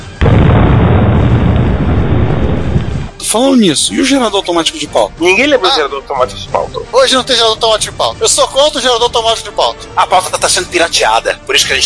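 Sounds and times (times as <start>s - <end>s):
loud explosion with rumbling roar of debris: 0.2s - 3.2s
speech: 3.3s - 11.8s.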